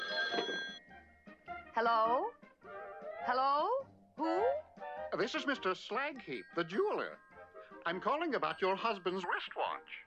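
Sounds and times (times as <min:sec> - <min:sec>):
telephone bell ringing: 0:00.0 - 0:01.0
speech: 0:01.8 - 0:02.4, 0:03.2 - 0:10.0.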